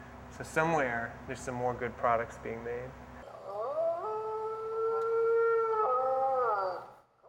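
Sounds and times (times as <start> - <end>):
speech: 0.4 - 3.1
electronic multi-animal toy howling: 3.3 - 7.0.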